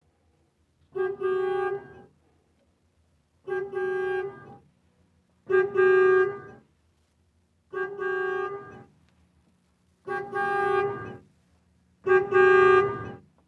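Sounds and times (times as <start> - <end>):
car horn: 0.9 - 2.1, 3.4 - 4.6, 5.5 - 6.6, 7.7 - 8.9, 10.0 - 11.3, 12.0 - 13.3.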